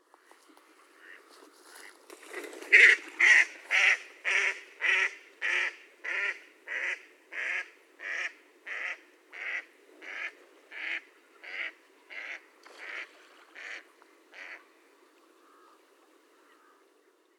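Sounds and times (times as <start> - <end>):
mallard Anas platyrhynchos: 0.7 - 2.0, 2.6 - 14.7.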